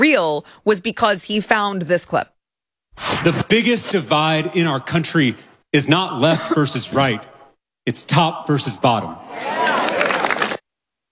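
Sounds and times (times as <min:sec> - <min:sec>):
speech: 0:00.0 - 0:02.4, 0:03.0 - 0:09.6
crowd noise at a political speech: 0:08.5 - 0:10.6
audience applause from a crowd at a political speech: 0:09.3 - 0:10.6.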